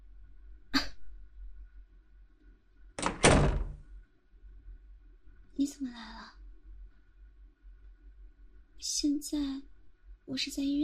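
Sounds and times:
door opening click: 0:03.0 - 0:03.8
door opening rattling clunk: 0:03.0 - 0:03.9
speech: 0:05.6 - 0:06.4, 0:08.8 - 0:09.7, 0:10.3 - 0:10.8.

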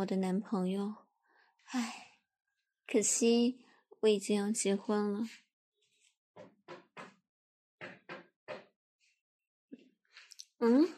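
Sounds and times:
speech: 0:00.0 - 0:01.0, 0:01.6 - 0:02.1, 0:02.9 - 0:05.4, 0:06.4 - 0:06.8, 0:10.6 - 0:10.9
knocking on a door: 0:06.4 - 0:07.2, 0:07.8 - 0:08.8.

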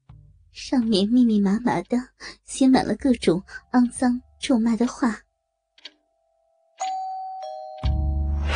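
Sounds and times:
speech: 0:00.6 - 0:05.2
doorbell two-note ding-dong chime: 0:06.8 - 0:08.4.

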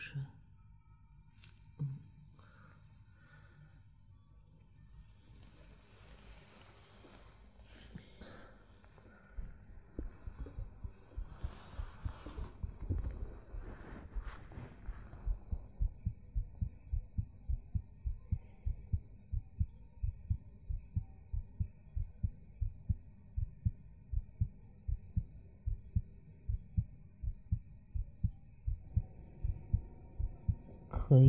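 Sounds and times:
soft rustling: 0:05.2 - 0:08.0, 0:08.8 - 0:16.2
heartbeat thumping: 0:09.2 - 0:31.2
speech: 0:31.1 - 0:31.2.

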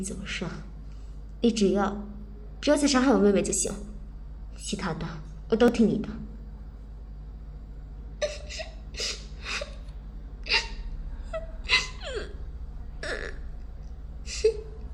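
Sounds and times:
speech: 0:00.0 - 0:00.7, 0:01.4 - 0:03.9, 0:04.6 - 0:06.3
young girl crying with sobs and whimpers: 0:08.2 - 0:13.5, 0:14.2 - 0:14.8.

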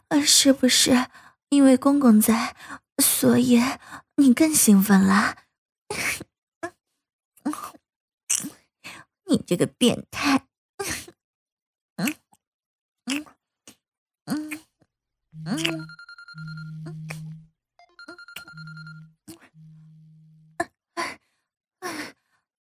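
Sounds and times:
speech: 0:00.1 - 0:06.3, 0:09.3 - 0:11.0, 0:15.4 - 0:17.2
telephone ringing with repeating electronic ringtone: 0:15.4 - 0:19.2.

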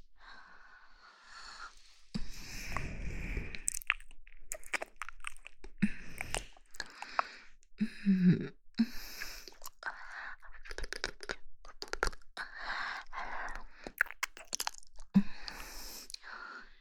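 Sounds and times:
breathing: 0:00.1 - 0:03.7, 0:05.8 - 0:08.2, 0:08.8 - 0:10.4, 0:12.5 - 0:14.0, 0:15.2 - 0:16.7
wet licking smacks and slurps: 0:03.6 - 0:07.3, 0:10.7 - 0:12.3, 0:13.7 - 0:16.2.

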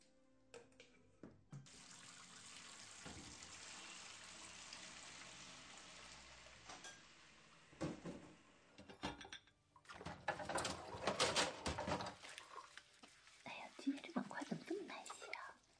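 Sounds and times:
running splashing water in a sink while washing dishes: 0:01.7 - 0:07.9, 0:09.8 - 0:15.7
crockery clinking: 0:08.8 - 0:09.6.

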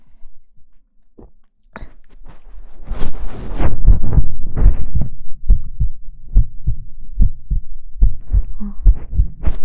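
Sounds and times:
rustling and handling noise: 0:00.8 - 0:05.2
strong heartbeat thumping: 0:03.6 - 0:09.6.

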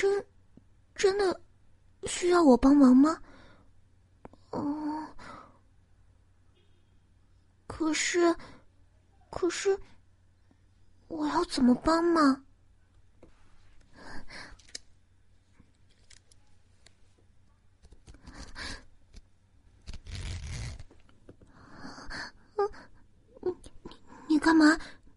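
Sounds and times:
speech: 0:00.0 - 0:00.3, 0:01.0 - 0:01.4, 0:02.0 - 0:03.3, 0:04.5 - 0:04.9, 0:07.8 - 0:08.5, 0:09.3 - 0:09.9, 0:11.1 - 0:12.4, 0:24.4 - 0:25.0
soft breaths and sighs: 0:03.2 - 0:05.8, 0:08.2 - 0:11.0, 0:13.2 - 0:14.8, 0:18.0 - 0:19.2, 0:21.4 - 0:25.1
zipper being pulled in a rasping stroke: 0:19.8 - 0:21.0.

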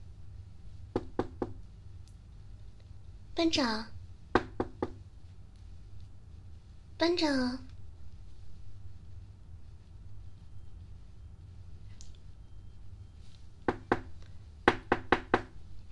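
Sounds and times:
faint low hum: 0:00.0 - 0:15.9
knocking on a door: 0:00.9 - 0:01.6, 0:04.3 - 0:05.0, 0:13.7 - 0:15.6
speech: 0:03.4 - 0:03.9, 0:07.0 - 0:07.7.

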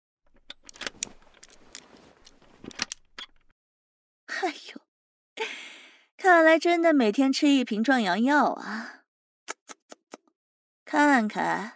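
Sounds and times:
key jiggling and turning in a small metal chastity lock: 0:00.3 - 0:03.5
speech: 0:06.5 - 0:09.0, 0:10.9 - 0:11.7.

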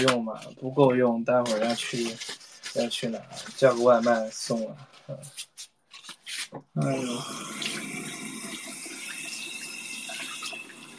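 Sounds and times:
speech: 0:00.0 - 0:05.5, 0:06.5 - 0:07.8
tap water running from a faucet during handwashing: 0:06.8 - 0:10.9.

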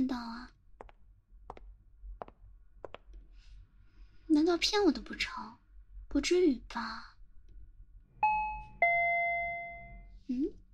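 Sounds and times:
speech: 0:04.3 - 0:07.1
two-note doorbell chime: 0:08.2 - 0:10.0.

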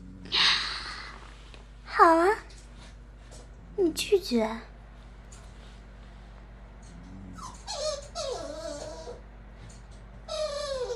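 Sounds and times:
low steady hum: 0:00.0 - 0:10.9
speech: 0:03.9 - 0:04.7
dog whimpering: 0:07.0 - 0:09.2, 0:10.3 - 0:10.9.

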